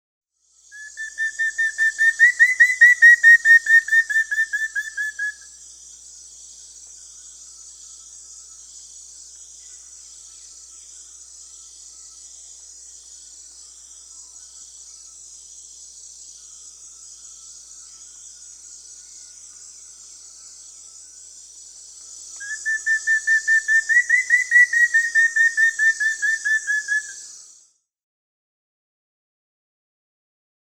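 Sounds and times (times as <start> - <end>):
Rufous-fronted Antthrush Formicarius rufifrons calling in Peru: 0.8 - 5.5, 22.4 - 27.3.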